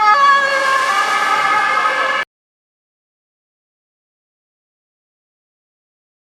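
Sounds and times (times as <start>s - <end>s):
doppler effect sound: 0.1s - 2.3s.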